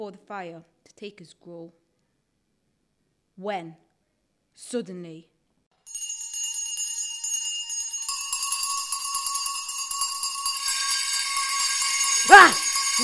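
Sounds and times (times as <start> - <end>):
speech: 0.0 - 1.8, 3.4 - 3.9, 4.6 - 5.3, 12.3 - 13.0
many bells ringing throughout a house: 5.9 - 13.0.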